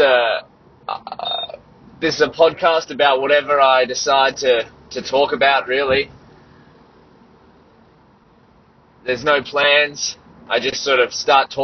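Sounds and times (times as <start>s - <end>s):
road noise inside a moving car: 0.0s - 11.6s
speech: 2.0s - 6.2s, 9.0s - 11.6s.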